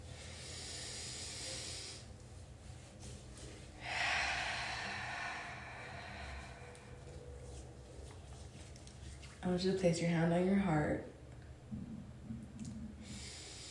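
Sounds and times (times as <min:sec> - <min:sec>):
deep breath in and out: 0:00.0 - 0:02.2, 0:03.8 - 0:07.5, 0:13.0 - 0:13.6
speech: 0:09.4 - 0:11.1.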